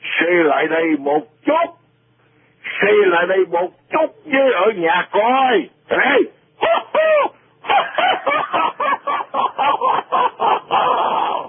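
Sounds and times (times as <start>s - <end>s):
speech: 0.2s - 1.8s, 2.8s - 6.4s
man's cackling laugh imitating a clucking chicken: 6.6s - 11.4s.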